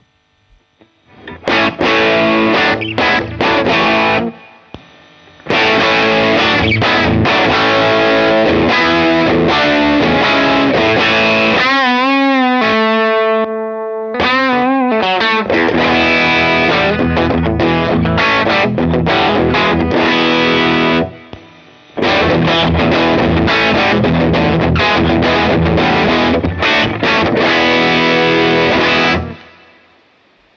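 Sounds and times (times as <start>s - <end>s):
electric guitar through two stacked overdrive pedals playing chords and riffs: 0.0s - 30.5s.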